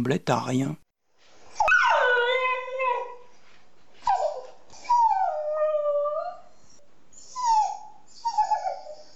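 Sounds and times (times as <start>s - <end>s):
speech: 0.0s - 0.8s
dog whimpering and whining: 1.5s - 3.4s, 4.0s - 9.1s.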